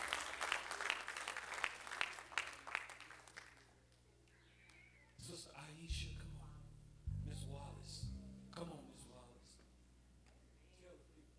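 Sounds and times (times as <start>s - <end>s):
audience clapping hands in praise: 0.0s - 4.0s
speech: 5.3s - 6.5s, 7.3s - 9.2s.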